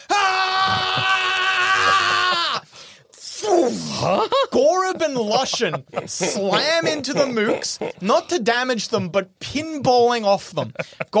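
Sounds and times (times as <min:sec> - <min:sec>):
two voices screaming in unison: 0:00.0 - 0:04.2
laughter: 0:03.9 - 0:08.3, 0:10.5 - 0:11.1
speech: 0:04.0 - 0:11.1.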